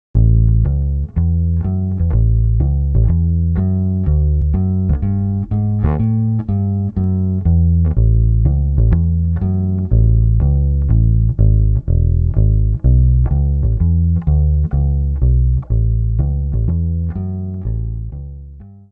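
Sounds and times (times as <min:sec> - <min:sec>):
bass guitar: 0:00.0 - 0:18.9.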